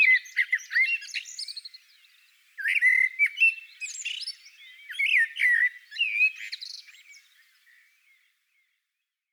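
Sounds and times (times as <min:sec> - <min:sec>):
common blackbird singing: 0:00.0 - 0:01.8, 0:02.6 - 0:07.9.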